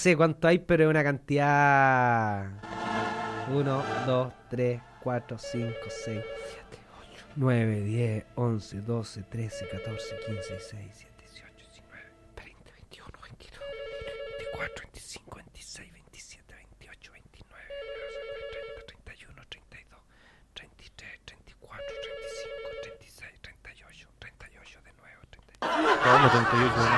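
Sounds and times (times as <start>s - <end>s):
speech: 0.0s - 6.7s, 7.4s - 11.1s, 26.1s - 26.9s
sudden burst of loud noise: 2.6s - 5.3s
WhatsApp message notification chime: 5.3s - 6.8s, 9.6s - 10.8s
soft whispering: 6.5s - 7.4s, 10.7s - 13.6s, 14.6s - 17.7s, 18.9s - 21.9s, 23.0s - 25.6s
laughter: 25.6s - 26.9s.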